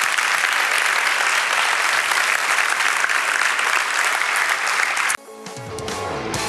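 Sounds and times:
congregation applauding: 0.0 - 5.2
soft music: 5.2 - 6.4.

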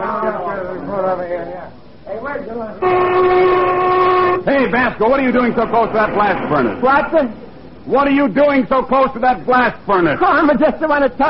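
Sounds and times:
speech: 0.9 - 11.2
factory lunch whistle blowing: 2.8 - 4.9.

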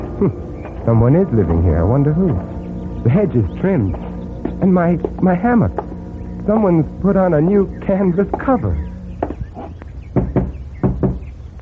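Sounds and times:
low steady hum: 0.0 - 11.6
speech: 0.2 - 5.8, 6.4 - 8.9
knocking on a door: 10.2 - 11.3.

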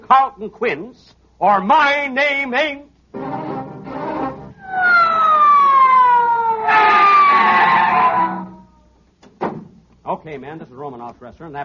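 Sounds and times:
speech: 0.1 - 3.4, 10.2 - 11.6
police squad car siren wailing: 4.0 - 8.7.

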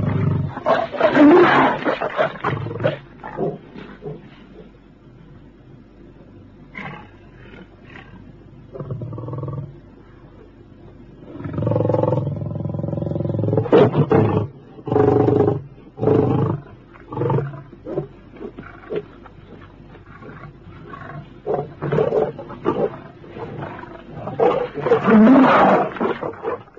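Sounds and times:
lions roaring and snarling during a kill: 0.0 - 4.8, 11.2 - 26.7.

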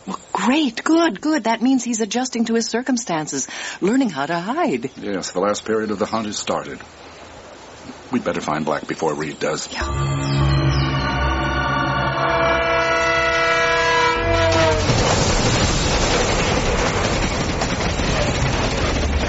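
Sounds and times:
speech: 0.4 - 7.0, 8.1 - 10.4
elevated railway train horn blaring: 9.8 - 15.2
elevated railway train wheels and cars rumbling: 9.8 - 19.2.

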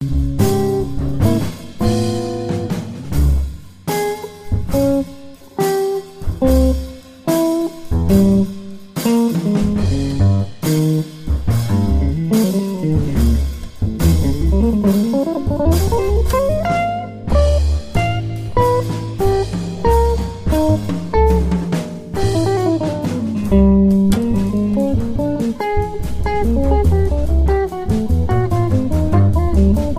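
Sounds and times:
blues music in D flat: 0.0 - 29.9.

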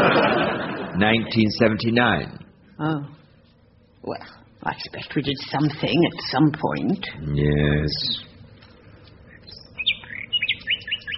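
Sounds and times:
laughter: 0.0 - 1.2
speech: 1.0 - 3.2, 4.0 - 8.3
sparrow chirping in the early morning: 9.3 - 11.1.

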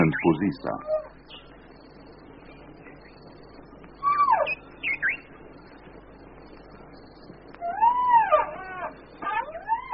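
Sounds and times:
young orphaned white rhinoceros giving high whining squeals: 4.0 - 5.2, 7.6 - 9.9.

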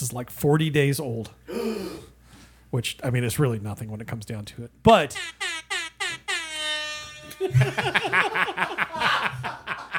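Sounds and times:
speech: 0.0 - 1.9, 2.7 - 5.5, 7.4 - 9.8
Jamaican air horn sound effect blasts: 5.2 - 7.5
people chuckling and laughing: 7.4 - 9.9.

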